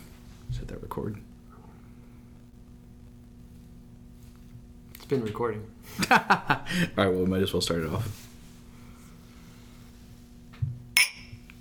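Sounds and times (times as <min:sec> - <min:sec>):
speech: 0:00.7 - 0:01.3, 0:05.1 - 0:08.3
laughter: 0:05.9 - 0:07.0
glasses of tequila clinking in a toast: 0:11.0 - 0:11.4.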